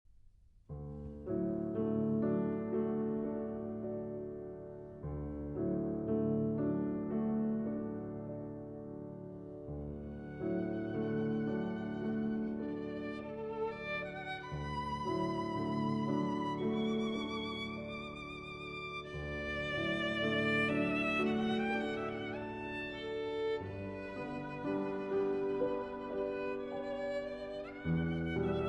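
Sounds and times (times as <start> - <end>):
cello and piano piece: 1.1 - 28.6.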